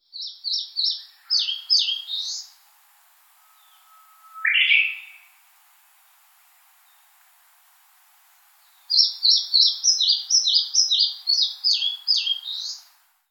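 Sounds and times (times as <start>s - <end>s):
Eastern crowned warbler in Yaita: 0.0s - 2.6s, 3.4s - 5.4s, 8.6s - 12.9s.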